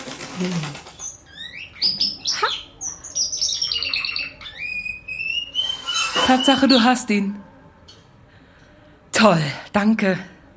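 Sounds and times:
speech: 0.4 - 0.9, 6.3 - 7.5, 9.2 - 10.3
small pet bird chirping and squawking while being caught: 0.5 - 6.9.

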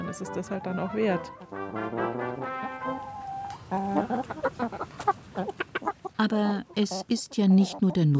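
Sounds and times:
chickens clucking and squawking: 0.0 - 8.1
speech: 0.1 - 5.6, 6.2 - 8.1.

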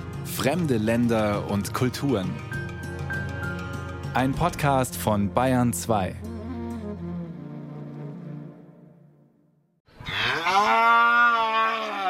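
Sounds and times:
speech: 0.4 - 2.6, 4.2 - 6.3
black-and-white cow mooing in a wooden plank pen in a village: 10.1 - 12.0.

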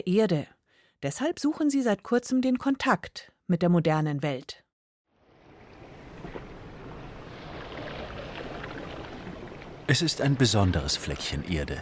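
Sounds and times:
speech: 0.0 - 4.6, 9.9 - 11.8
ocean waves washing onto a sandy beach: 5.2 - 11.5.

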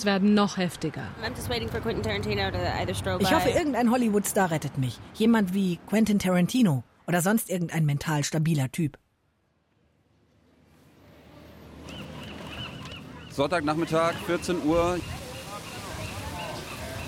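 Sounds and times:
outdoor hubbub at a fountain surrounded by stalls in San Francisco: 0.0 - 4.7, 10.7 - 17.0
speech: 0.0 - 9.0, 13.4 - 15.2
seagulls squabbling over a piece of bread: 11.8 - 17.0.

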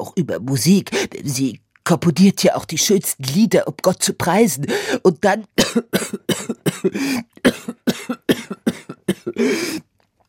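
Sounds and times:
speech: 0.0 - 9.9
person in a violent coughing fit: 5.6 - 9.9.

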